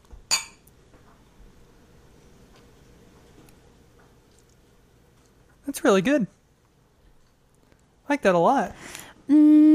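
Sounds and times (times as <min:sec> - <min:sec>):
two glasses clinking in a toast: 0:00.3 - 0:00.6
speech: 0:05.7 - 0:06.4, 0:08.1 - 0:09.6.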